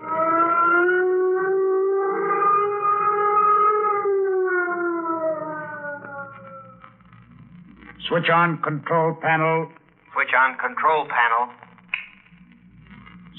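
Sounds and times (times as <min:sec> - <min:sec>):
flight warning siren wailing: 0:00.0 - 0:07.6
speech: 0:08.1 - 0:11.6.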